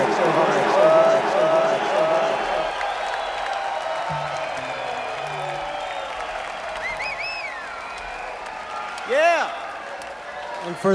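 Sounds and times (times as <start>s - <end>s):
voices: 0.0s - 2.7s
crowd applauding: 0.0s - 10.9s
scattered cheers: 0.0s - 10.9s.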